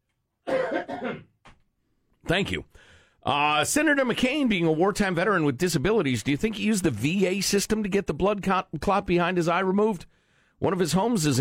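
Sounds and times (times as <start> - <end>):
person coughing: 0.5 - 1.4
speech: 2.3 - 11.3.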